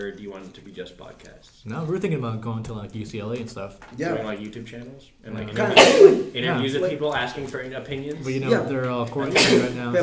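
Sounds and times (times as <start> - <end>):
speech: 0.0 - 10.0
person sneezing: 5.6 - 6.4, 9.3 - 9.8.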